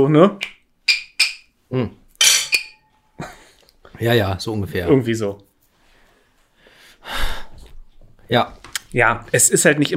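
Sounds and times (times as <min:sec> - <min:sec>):
speech: 0:00.0 - 0:00.5, 0:01.7 - 0:02.0, 0:04.0 - 0:05.5, 0:08.3 - 0:09.9
beer bottles clinking in a toast: 0:02.2 - 0:02.9.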